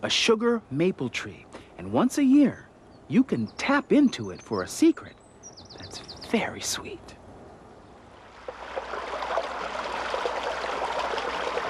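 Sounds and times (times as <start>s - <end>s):
speech: 0.0s - 5.2s, 5.9s - 7.2s
water from melting snow trickling into a small stream: 8.2s - 11.6s.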